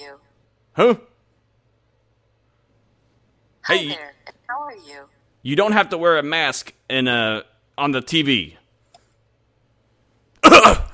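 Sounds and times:
speech: 0.1s - 1.1s, 3.7s - 8.6s
rough throaty cough: 10.4s - 10.9s.

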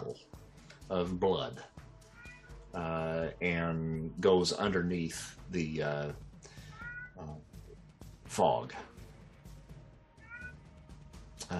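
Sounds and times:
speech: 0.9s - 1.8s, 2.8s - 6.2s, 8.3s - 8.9s
cat meowing: 2.1s - 2.6s, 6.7s - 7.2s, 10.2s - 10.6s.

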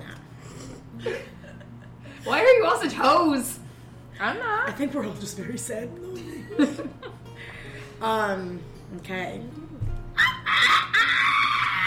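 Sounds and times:
speech: 2.2s - 3.6s, 4.2s - 7.1s, 8.0s - 9.6s
person imitating a rooster crowing: 10.2s - 11.8s.

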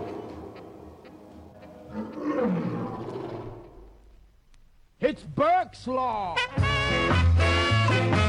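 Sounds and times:
lion roaring with a deep rumbling growl: 1.9s - 4.1s
speech: 5.1s - 8.2s.

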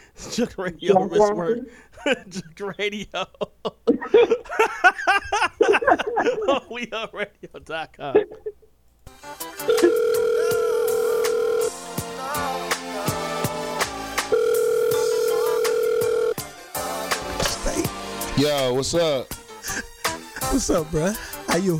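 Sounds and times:
speech: 0.2s - 8.6s, 9.2s - 10.5s, 18.4s - 19.9s, 20.5s - 21.7s
laughter: 0.9s - 8.6s, 19.6s - 21.1s
phone ringing over the line: 9.6s - 11.8s, 14.3s - 16.4s
busy music track with sharp beats: 11.7s - 14.4s, 16.4s - 21.7s.

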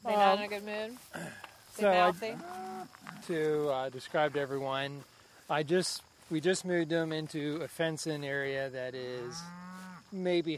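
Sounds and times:
speech: 0.1s - 10.5s
cattle mooing: 2.0s - 2.9s, 9.2s - 10.0s.

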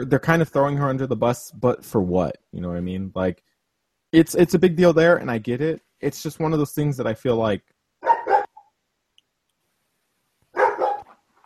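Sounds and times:
speech: 0.0s - 3.5s, 4.1s - 7.7s
dog barking: 8.0s - 8.7s, 10.5s - 11.2s.

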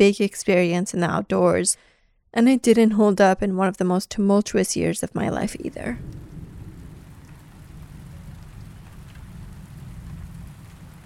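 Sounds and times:
speech: 0.0s - 6.2s
deep continuous rumble of distant thunder: 5.5s - 11.0s
steady rain: 5.6s - 11.0s.

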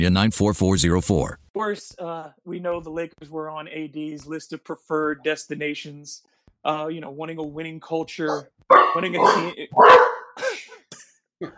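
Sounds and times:
speech: 0.0s - 10.7s, 11.4s - 11.5s
dog barking: 8.3s - 10.4s.

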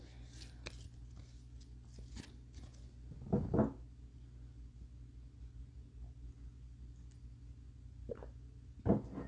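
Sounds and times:
steady low hum: 0.0s - 9.2s
cards being shuffled by hand: 0.2s - 2.9s.

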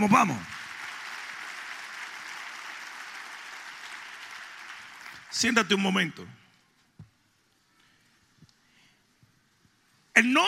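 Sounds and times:
speech: 0.0s - 0.6s, 5.3s - 6.4s, 10.2s - 10.4s
audience applauding: 0.0s - 5.4s.

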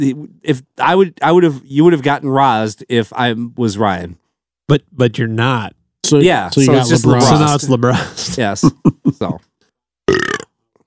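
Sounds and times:
speech: 0.0s - 9.5s, 10.1s - 10.4s
deep raspy burp: 10.1s - 10.6s.

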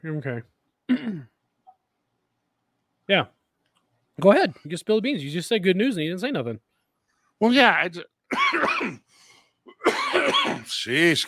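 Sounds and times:
speech: 0.0s - 1.3s, 3.1s - 3.4s, 4.2s - 6.7s, 7.4s - 9.0s, 9.8s - 11.2s
loud raspy hacking cough: 0.9s - 1.4s, 8.3s - 10.7s.

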